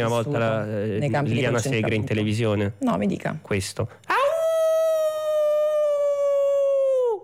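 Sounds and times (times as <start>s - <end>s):
speech: 0.0s - 4.2s
person imitating a howl with a long wail: 4.1s - 7.2s.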